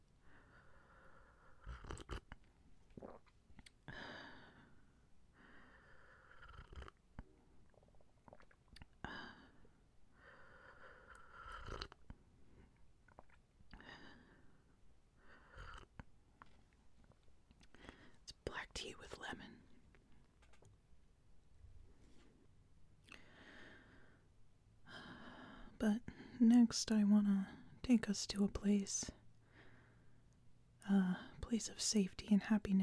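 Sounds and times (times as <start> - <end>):
person slurping sips of hot tea: 1.6 - 2.3, 2.9 - 3.3, 7.8 - 8.6, 11.1 - 12.0, 15.6 - 15.9
speech: 18.5 - 19.6, 25.8 - 29.2, 30.9 - 32.8.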